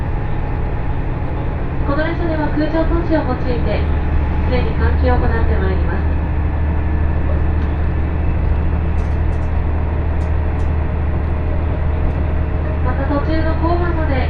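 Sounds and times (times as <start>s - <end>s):
train running on the IGR Iwate Galaxy Railway heard from inside the carriage: 0.0s - 14.2s
speech: 2.0s - 6.1s, 13.0s - 14.2s
faint clicks and rattles in a train carriage: 8.9s - 10.8s.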